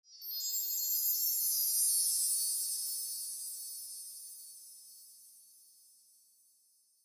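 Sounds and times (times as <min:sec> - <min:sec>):
wet chimes: 0:00.1 - 0:07.0.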